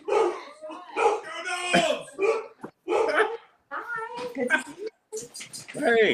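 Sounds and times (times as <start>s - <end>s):
dog barking: 0.0s - 1.3s, 2.2s - 3.4s
speech: 1.7s - 2.0s, 5.8s - 6.1s.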